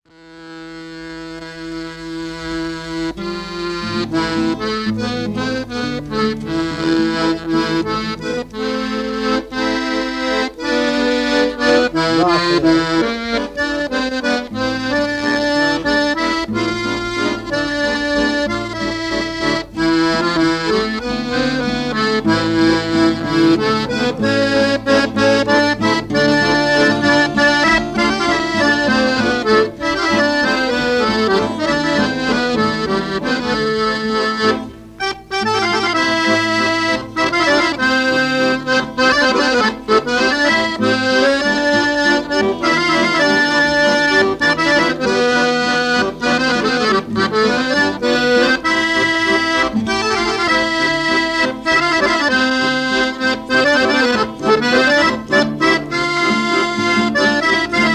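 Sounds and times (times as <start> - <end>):
waltz played on guitar and accordion: 0.1 - 57.9.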